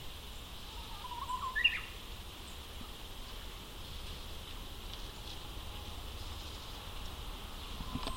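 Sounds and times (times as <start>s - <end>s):
steady background hiss: 0.0s - 8.1s
Japanese bush warbler call rising sharply in pitch: 0.7s - 1.9s.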